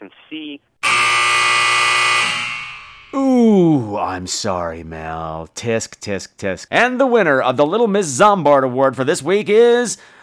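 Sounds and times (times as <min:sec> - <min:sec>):
speech: 0:00.3 - 0:01.0, 0:04.0 - 0:10.2
game show buzzer: 0:00.8 - 0:03.2.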